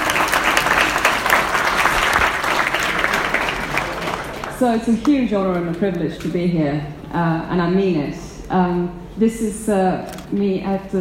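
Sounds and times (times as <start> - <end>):
large audience applauding a speaker at a presentation: 0.0 - 5.1
speech: 4.6 - 10.9.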